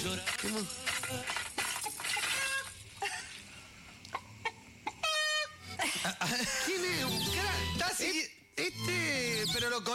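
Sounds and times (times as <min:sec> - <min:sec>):
speech: 0:00.0 - 0:02.1, 0:06.0 - 0:09.9
rooster clucking: 0:00.1 - 0:02.7, 0:04.1 - 0:05.6.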